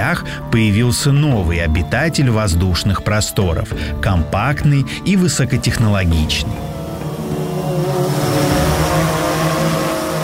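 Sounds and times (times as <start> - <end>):
speech: 0.0 - 6.7
buzzing propeller whine of cargo drone: 6.2 - 10.2
cargo drone motor humming overhead: 6.5 - 10.2.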